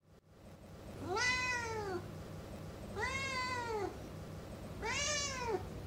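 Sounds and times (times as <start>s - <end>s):
cat: 1.0s - 2.1s, 3.0s - 4.0s, 4.8s - 5.7s.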